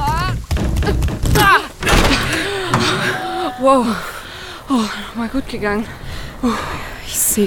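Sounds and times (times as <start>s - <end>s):
stuck door being shoved and forced open: 0.6s - 3.6s
speech: 3.6s - 7.4s.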